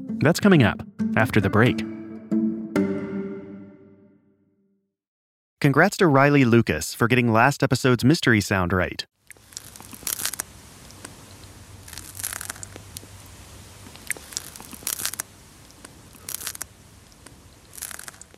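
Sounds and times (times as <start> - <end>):
speech: 0.2 - 1.9, 5.6 - 9.2
snail eating a piece of lettuce in an anechoic chamber: 9.2 - 18.3.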